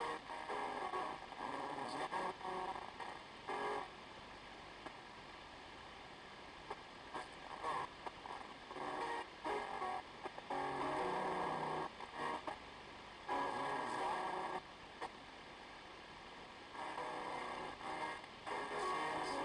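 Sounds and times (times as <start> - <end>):
television: 0.0 - 19.4.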